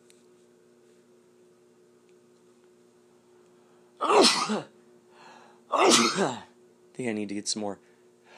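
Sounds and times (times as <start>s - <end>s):
quiet hum: 0.0s - 8.3s
person sneezing: 4.0s - 4.7s, 5.7s - 6.6s
speech: 4.0s - 4.7s, 5.8s - 7.9s.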